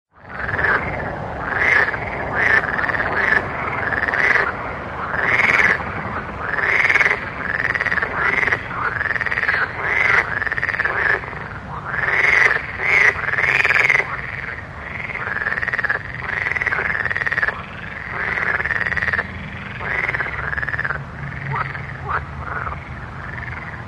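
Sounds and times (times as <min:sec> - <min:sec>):
frogs croaking in a park at night: 0:00.2 - 0:23.8.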